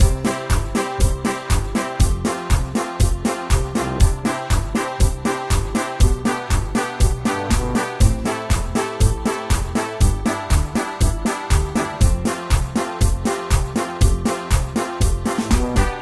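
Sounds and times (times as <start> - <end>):
polka music loop: 0.0 - 16.0.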